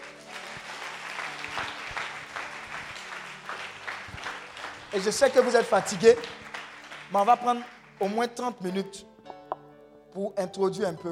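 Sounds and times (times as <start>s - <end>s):
church congregation applauding during a sermon: 0.0s - 8.7s
speech: 4.9s - 6.4s, 7.1s - 9.1s, 10.1s - 11.1s.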